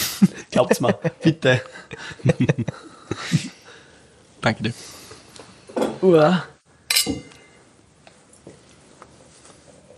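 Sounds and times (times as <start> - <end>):
speech: 0.2 - 3.5, 4.4 - 5.0, 5.8 - 7.3
glasses of sparkling wine clinking in a toast: 6.9 - 7.6.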